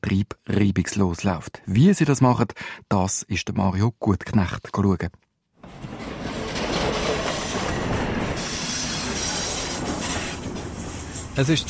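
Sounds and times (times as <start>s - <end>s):
speech: 0.0s - 5.2s, 11.4s - 11.6s
freight train with heavy wagons arriving at a shunting yard: 5.6s - 11.6s
faint metallic squeals of freight train wagons: 6.1s - 11.4s.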